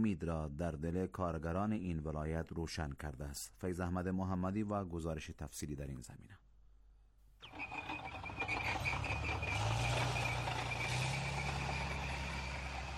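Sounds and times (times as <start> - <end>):
speech: 0.0 - 6.5, 7.4 - 7.9
heavy truck engines droning in an industrial park: 7.5 - 12.9.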